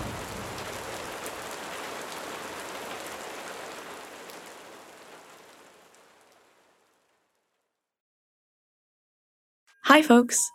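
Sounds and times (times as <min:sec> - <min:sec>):
rain of the rainy season in June falling: 0:00.0 - 0:07.8
speech: 0:09.8 - 0:10.5.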